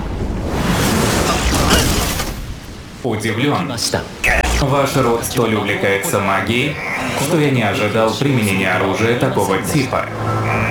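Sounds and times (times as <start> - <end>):
loud explosion of a simple explosive with crackling debris: 0.0 - 3.0
speech: 3.0 - 10.4.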